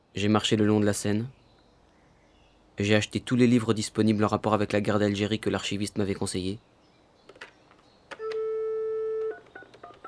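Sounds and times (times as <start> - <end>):
speech: 0.2 - 1.4, 2.8 - 6.7
touch-tone keypad beeps of a telephone number being dialed: 8.2 - 10.0.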